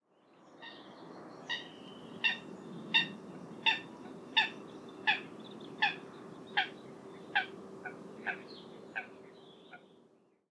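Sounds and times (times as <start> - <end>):
Eurasian coot Fulica atra calling: 1.5 - 9.8.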